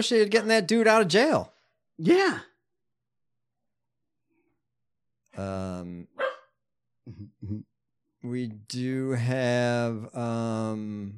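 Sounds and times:
speech: 0.0 - 2.5, 5.4 - 6.1, 7.1 - 11.1
female dog barking and yelping: 6.2 - 6.6.

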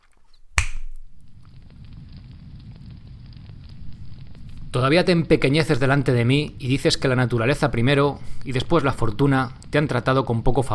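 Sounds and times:
sharp strike lighting a campfire: 0.6 - 1.1
campfire crackling and roaring: 0.9 - 10.7
speech: 4.7 - 10.7.

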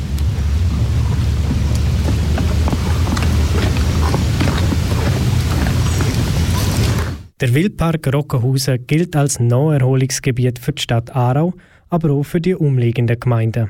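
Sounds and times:
constant low rumbling background: 0.0 - 7.4
red deer crunching whole chestnuts outdoors: 0.8 - 7.1
speech: 7.4 - 13.6.

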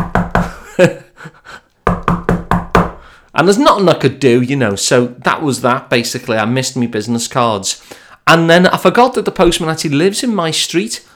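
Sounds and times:
loud knocking on a door: 0.0 - 0.7, 1.9 - 3.1
speech: 0.8 - 1.6, 3.4 - 11.1.

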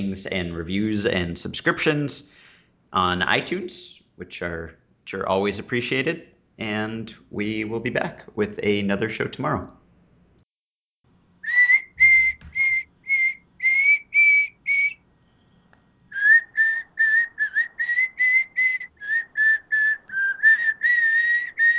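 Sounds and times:
speech: 0.0 - 9.8
person whistling a wandering melody: 11.5 - 15.0, 16.2 - 21.7.

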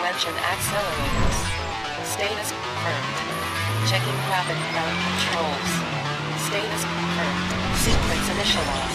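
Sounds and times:
speech: 0.2 - 1.6, 2.2 - 8.9
turbo engine revving: 1.3 - 8.9
wavering high-pitched tire squeal: 3.3 - 7.1.

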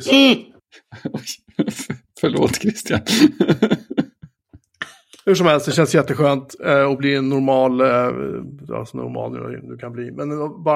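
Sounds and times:
speech: 0.0 - 3.8, 5.3 - 10.7
laughter: 0.7 - 5.2
harsh coughing: 0.8 - 5.2.

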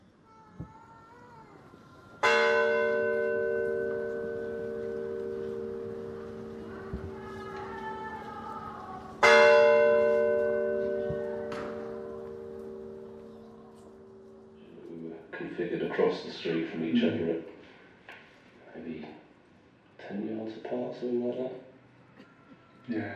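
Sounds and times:
deep mournful church bell tolling: 2.2 - 8.6, 9.2 - 14.6
speech: 15.6 - 17.5, 21.0 - 21.7.

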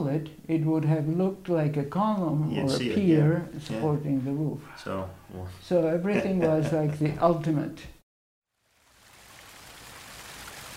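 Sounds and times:
speech: 0.1 - 8.0
laughter: 6.0 - 7.2
rushing water: 8.6 - 10.7.

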